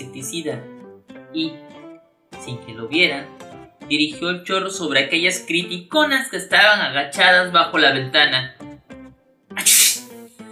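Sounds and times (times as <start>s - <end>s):
speech: 0.2s - 1.8s, 2.4s - 8.6s, 9.6s - 9.9s
person sneezing: 9.6s - 10.1s.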